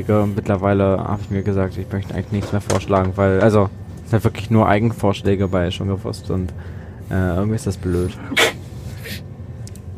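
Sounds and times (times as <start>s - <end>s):
speech: 0.0s - 9.2s
breathy exhale: 6.6s - 7.1s
person sneezing: 8.2s - 9.2s.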